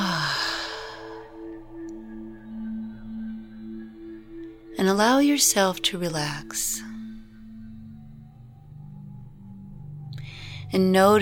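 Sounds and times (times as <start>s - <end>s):
deep breath out through the mouth: 0.0s - 1.6s, 10.2s - 10.7s
speech: 4.8s - 7.0s, 10.7s - 11.2s.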